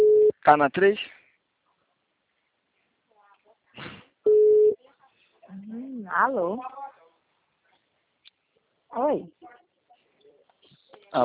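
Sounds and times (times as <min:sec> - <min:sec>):
telephone tone after a dropped call: 0:00.0 - 0:00.3, 0:04.3 - 0:04.8
speech: 0:00.5 - 0:01.2, 0:05.5 - 0:06.8, 0:08.9 - 0:09.6.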